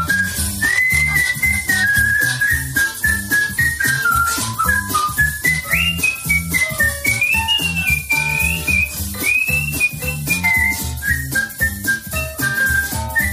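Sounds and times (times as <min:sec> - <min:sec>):
professional female whistler whistling a melody with slides and trills: 0:00.0 - 0:13.3
steady rhythmic instrumental backing: 0:00.0 - 0:13.3.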